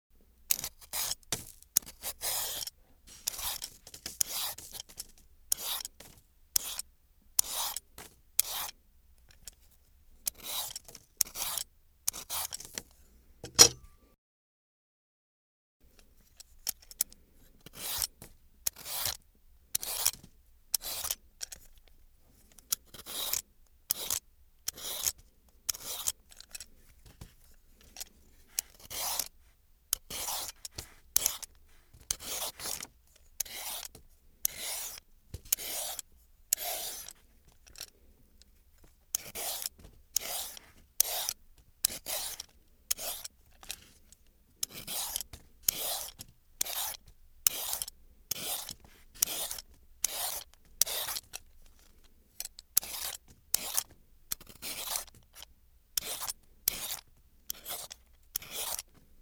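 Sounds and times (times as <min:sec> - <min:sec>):
peeler scraping carrots: 0:00.5 - 0:06.8, 0:07.4 - 0:09.5, 0:10.3 - 0:13.8, 0:17.7 - 0:21.8, 0:22.5 - 0:38.0, 0:39.1 - 0:59.2.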